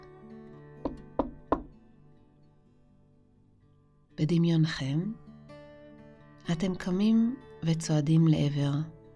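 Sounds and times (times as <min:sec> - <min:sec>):
firm knocking on a door: 0:00.8 - 0:01.7
speech: 0:04.2 - 0:05.2, 0:06.5 - 0:09.0.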